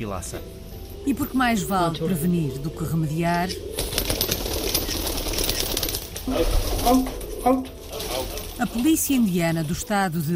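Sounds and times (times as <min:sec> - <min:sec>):
speech: 0:00.0 - 0:03.9, 0:06.3 - 0:07.8, 0:08.6 - 0:10.3
carrier pigeons cooing: 0:00.8 - 0:10.3
carrier pigeon wings flapping and rustling: 0:03.3 - 0:10.1.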